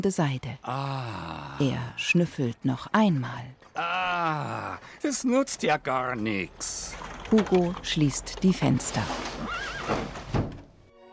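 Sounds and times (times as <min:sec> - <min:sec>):
speech: 0:00.0 - 0:10.5
horse whinnying: 0:09.3 - 0:10.3.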